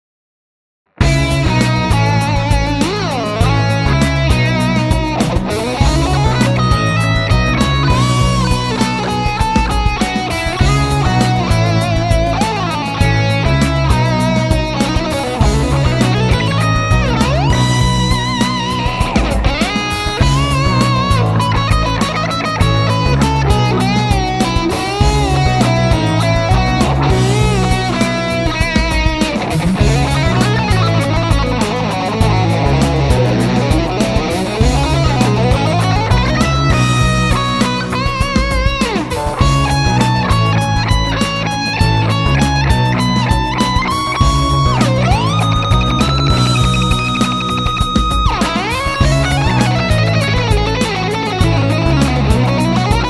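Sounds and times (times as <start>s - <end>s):
modern pop music: 1.0s - 53.0s.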